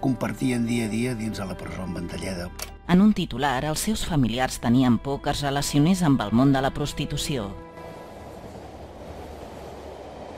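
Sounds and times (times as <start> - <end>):
speech: 0.0 - 7.7
train rolling along crossing a field: 7.6 - 10.3.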